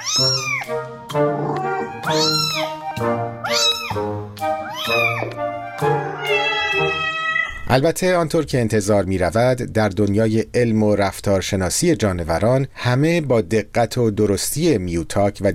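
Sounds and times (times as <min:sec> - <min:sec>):
domestic cat meowing: 0:00.0 - 0:04.0, 0:04.6 - 0:07.7
speech: 0:02.1 - 0:02.6, 0:07.7 - 0:15.5.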